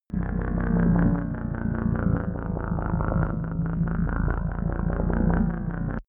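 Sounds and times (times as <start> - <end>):
alien scout ship: 0.0 - 6.0.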